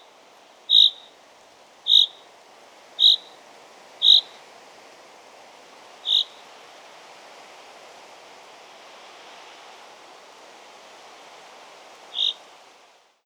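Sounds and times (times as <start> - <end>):
common chaffinch Fringilla coelebs calling: 0.7 - 1.2, 1.9 - 2.2, 3.0 - 3.4, 4.0 - 4.4, 6.1 - 6.4, 12.1 - 12.4.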